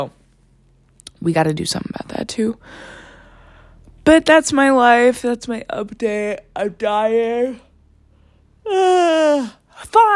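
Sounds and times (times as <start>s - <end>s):
speech: 0.0s - 0.2s, 1.2s - 3.0s, 4.0s - 7.6s, 8.6s - 10.1s
sharp intake of breath: 2.6s - 3.8s
person yawning: 8.6s - 9.7s.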